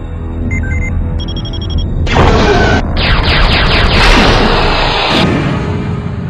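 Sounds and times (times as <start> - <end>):
short electronic beeps of a science-fiction space weapon: 0.4 - 1.9
science-fiction space weapon blast: 2.1 - 6.2
roaring rush with sweeping tones of a science-fiction space weapon: 3.2 - 6.2.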